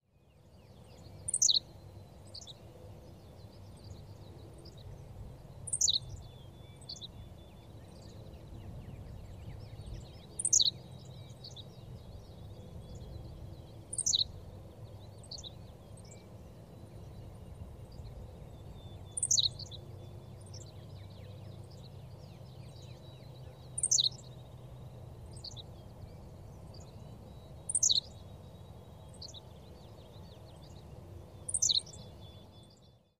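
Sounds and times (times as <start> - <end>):
Henslow's sparrow Ammodramus henslowii: 0.1 - 33.1.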